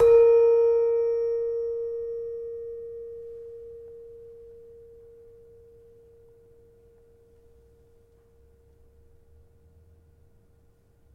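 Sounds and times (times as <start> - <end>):
demung metallophone of a gamelan: 0.0 - 6.6.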